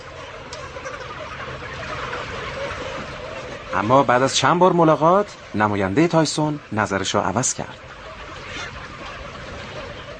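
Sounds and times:
many chickens clucking inside a poultry house: 0.0 - 10.1
speech: 3.7 - 7.9.

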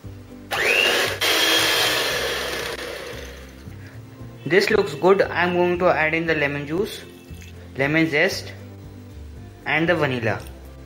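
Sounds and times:
electric mixer beating butter and sugar in a mixing bowl: 0.5 - 3.5
speech: 4.5 - 7.1, 7.8 - 8.6, 9.6 - 10.5.

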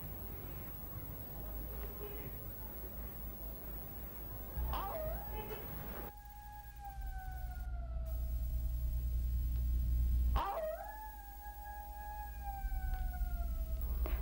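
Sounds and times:
low constant rumble: 3.2 - 10.4, 11.8 - 14.2
jackals howling at night: 4.4 - 9.4, 10.3 - 14.2.

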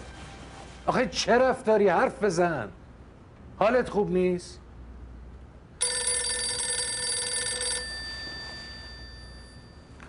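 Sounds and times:
speech: 0.9 - 2.8, 3.6 - 4.6
telephone bell ringing: 5.8 - 10.0.

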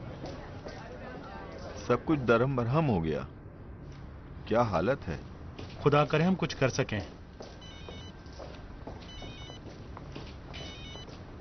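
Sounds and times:
speech: 1.9 - 3.4, 4.5 - 7.2
telephone ringing in short warbling bursts: 7.6 - 8.1, 9.1 - 9.6, 10.6 - 11.1.

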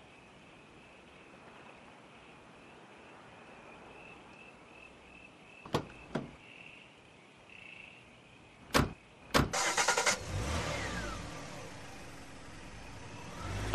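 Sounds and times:
car door thumps: 5.7 - 6.4, 8.7 - 9.6
car engine cranking, idling and pulling away: 8.7 - 13.7.

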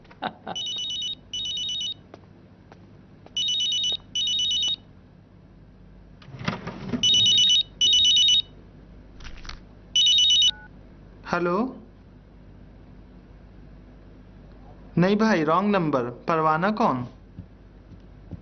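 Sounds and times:
speech: 0.2 - 0.6, 11.4 - 11.8, 15.0 - 17.2
mobile phone ringtone in paired electronic bursts: 0.6 - 2.0, 3.4 - 4.8, 7.0 - 8.5, 10.0 - 10.7.

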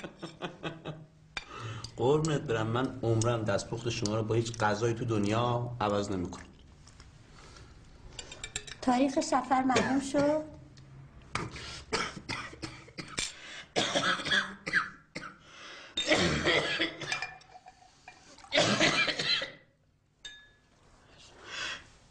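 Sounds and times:
speech: 2.0 - 6.5, 8.8 - 10.5
person coughing after food went down the wrong way: 11.4 - 13.2, 13.8 - 15.4, 16.0 - 17.2, 18.5 - 19.6.

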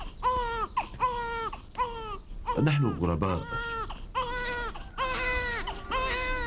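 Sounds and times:
hungry infant crying: 0.0 - 6.4
speech: 2.6 - 3.7.

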